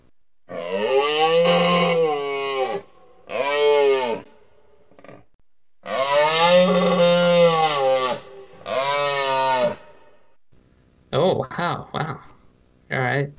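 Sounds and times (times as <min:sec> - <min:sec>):
moose bellowing: 0:00.5 - 0:05.2, 0:05.8 - 0:11.2.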